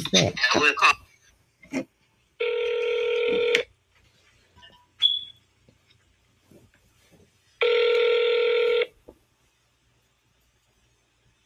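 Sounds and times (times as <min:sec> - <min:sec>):
speech: 0:00.1 - 0:01.0, 0:01.7 - 0:01.9
telephone ringback tone heard over the line: 0:02.4 - 0:03.6, 0:07.6 - 0:08.9.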